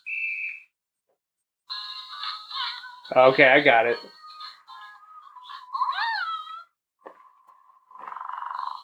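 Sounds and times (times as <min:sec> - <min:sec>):
electronic toy cat warbling meow-like tones: 0:01.7 - 0:06.8
electronic toy cat buzzing purr: 0:01.7 - 0:08.8
speech: 0:03.1 - 0:04.2.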